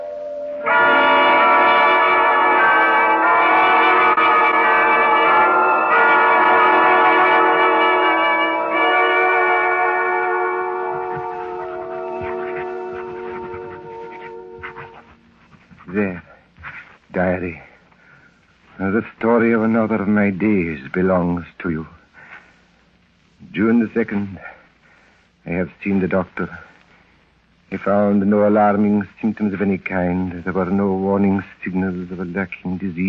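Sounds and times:
church bells ringing in a dense peal: 0.0s - 15.0s
speech: 19.0s - 22.0s, 23.6s - 24.5s, 25.5s - 26.7s, 27.7s - 33.0s.

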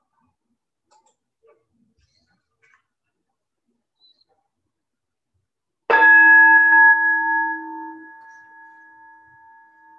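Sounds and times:
meditation bell ringing: 5.9s - 9.9s.

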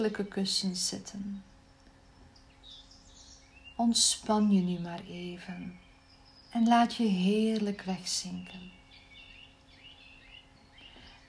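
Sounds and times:
speech: 0.0s - 1.5s, 3.8s - 5.8s, 6.5s - 8.8s
birds singing in high repeated chirping phrases: 0.0s - 11.2s.

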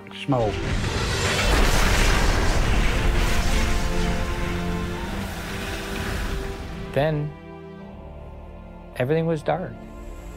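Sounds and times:
speech: 0.1s - 1.0s, 6.9s - 7.4s, 9.0s - 10.0s
deep roaring explosion from a head-on train collision: 0.3s - 7.0s.

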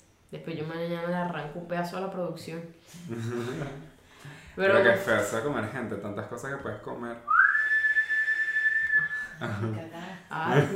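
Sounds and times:
speech: 0.3s - 7.3s, 9.4s - 10.7s
laughter: 3.1s - 3.9s, 9.3s - 10.7s
long eerie whistle swooping upward to a high pitch: 7.3s - 9.4s.

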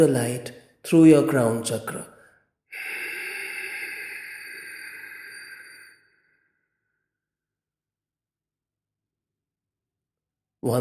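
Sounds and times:
speech: 0.0s - 2.1s
long slow deep exhale: 2.2s - 6.7s.

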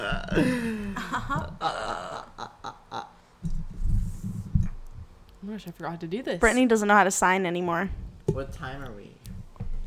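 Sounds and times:
speech: 0.0s - 1.8s, 5.5s - 9.2s
loud croaky rumbling burp: 0.0s - 3.1s
shorter guttural bursts: 0.0s - 3.2s.

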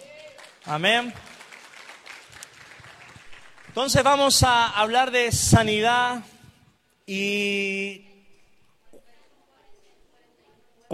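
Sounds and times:
audience applauding: 0.0s - 4.4s
speech: 0.6s - 1.3s, 3.8s - 6.4s, 7.1s - 8.1s.

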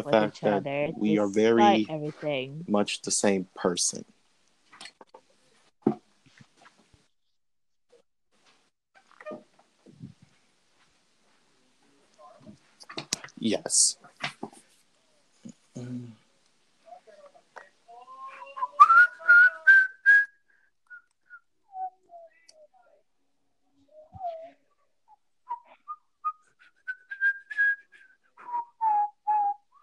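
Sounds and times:
speech: 0.0s - 4.2s, 13.4s - 14.0s
person whistling a meandering unaccompanied tune: 18.4s - 22.7s, 25.5s - 29.8s.

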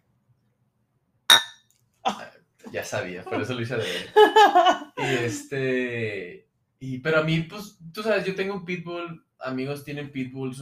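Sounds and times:
glasses clinking in a toast: 1.3s - 1.6s
speech: 2.1s - 10.6s
laughter: 2.7s - 6.1s.

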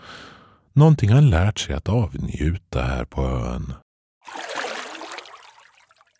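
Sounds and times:
speech: 0.8s - 4.5s
hands washed in cold lake water: 4.2s - 6.1s.

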